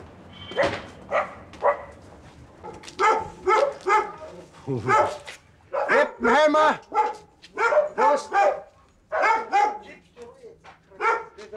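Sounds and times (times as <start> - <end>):
dog barking: 0.5 - 2.0, 2.6 - 6.2, 6.9 - 10.0, 10.9 - 11.4
speech: 4.7 - 5.3, 6.2 - 6.9.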